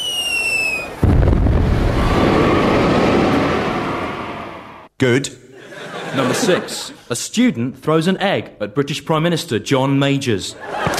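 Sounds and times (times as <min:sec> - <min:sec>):
high whistle falling in pitch before a thrown bomb explodes: 0:00.0 - 0:01.0
thrown bomb exploding with a long rumbling roar: 0:01.0 - 0:04.9
speech: 0:05.0 - 0:05.4, 0:06.1 - 0:10.9
laughter: 0:05.5 - 0:07.1, 0:10.5 - 0:10.9.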